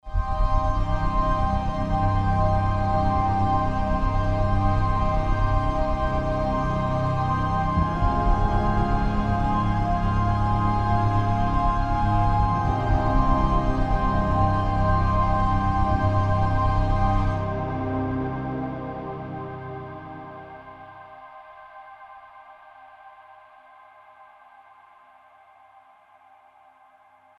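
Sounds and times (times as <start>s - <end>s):
synth pad: 0.1s - 23.6s.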